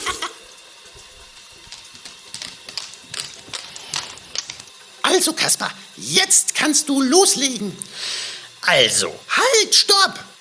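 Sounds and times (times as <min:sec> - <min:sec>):
paws being washed under running tap water: 0:00.0 - 0:10.3
speech: 0:05.2 - 0:10.3.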